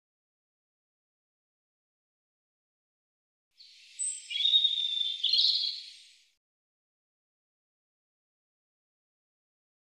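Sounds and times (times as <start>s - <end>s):
European robin warbling: 3.8s - 6.2s.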